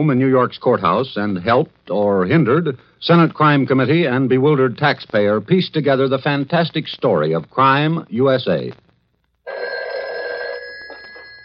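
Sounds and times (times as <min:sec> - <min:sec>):
speech: 0:00.0 - 0:08.8
telephone bell ringing in a bookmaking pool room: 0:09.5 - 0:11.4.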